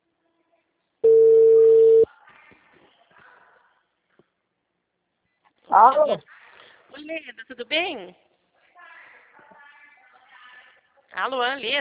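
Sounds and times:
telephone ringing tone while a call is being placed: 0:01.0 - 0:02.1
speech: 0:05.8 - 0:06.4, 0:07.0 - 0:08.3, 0:11.2 - 0:11.7.

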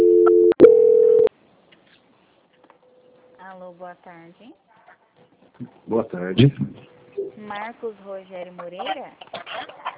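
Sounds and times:
telephone call transfer tone: 0:00.0 - 0:01.3
speech: 0:03.9 - 0:09.7.

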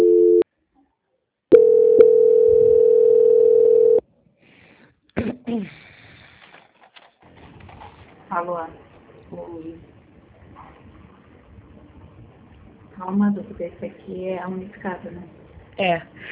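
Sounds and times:
telephone tones while a call is transferred: 0:00.0 - 0:00.4, 0:01.5 - 0:04.0
speech: 0:13.0 - 0:16.2.

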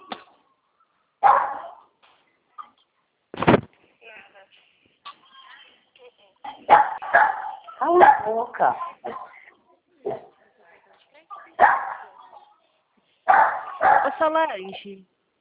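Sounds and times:
dog barking: 0:01.2 - 0:01.9, 0:06.7 - 0:08.4, 0:10.1 - 0:10.3, 0:11.6 - 0:12.2, 0:13.3 - 0:14.3
speech: 0:07.8 - 0:09.2, 0:14.2 - 0:15.2.

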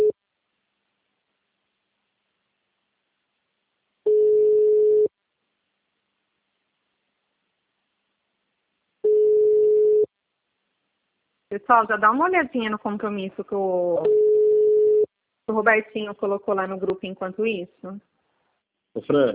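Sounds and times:
telephone ringback tone while calling someone: 0:04.1 - 0:05.1, 0:09.0 - 0:10.1, 0:14.1 - 0:15.1
speech: 0:11.6 - 0:14.3, 0:15.5 - 0:18.1, 0:18.9 - 0:19.3.

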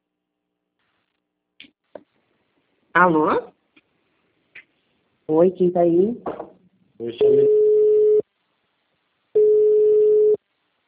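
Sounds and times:
speech: 0:03.0 - 0:03.5, 0:05.3 - 0:06.3, 0:07.0 - 0:07.5
phone busy tone after a dropped call: 0:07.2 - 0:08.2, 0:09.4 - 0:10.4.

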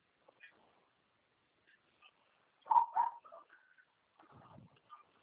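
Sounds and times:
dog barking: 0:02.7 - 0:03.6.

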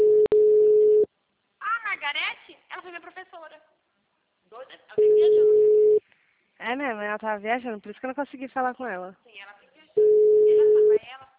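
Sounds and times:
telephone line tone while a call is placed: 0:00.0 - 0:01.1, 0:05.0 - 0:06.0, 0:10.0 - 0:11.0
speech: 0:06.6 - 0:09.6.

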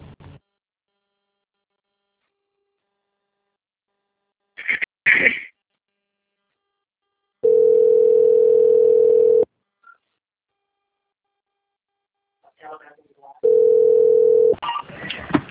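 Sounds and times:
telephone line tone while a call is transferred to another city: 0:07.4 - 0:09.5, 0:13.4 - 0:14.6.

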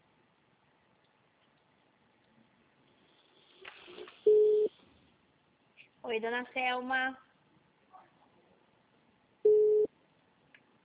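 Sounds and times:
faint low noise: 0:00.0 - 0:10.8
telephone beep from an unanswered call: 0:04.3 - 0:04.7, 0:09.5 - 0:09.9
speech: 0:06.1 - 0:07.2.

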